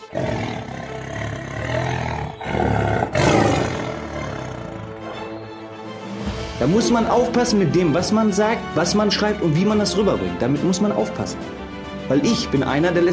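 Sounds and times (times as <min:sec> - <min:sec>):
deep rumbling tiger roar used as a jingle: 0:00.0 - 0:05.2
speech: 0:06.6 - 0:13.1.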